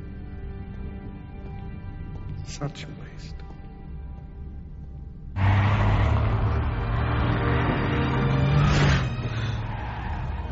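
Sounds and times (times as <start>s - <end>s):
speech: 2.5s - 3.5s
car engine starting and running: 5.4s - 10.5s.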